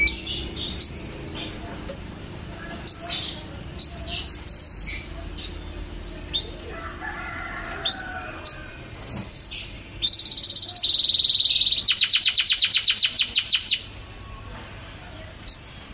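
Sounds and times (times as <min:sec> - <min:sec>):
champion canary song with whistles and trills: 0:00.0 - 0:15.9.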